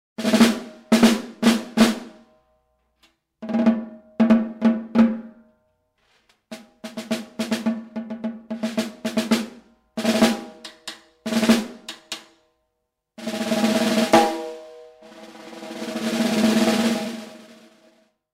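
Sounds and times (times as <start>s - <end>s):
snare drum: 0.2s - 2.2s, 3.4s - 5.3s, 6.5s - 12.3s, 13.2s - 18.0s.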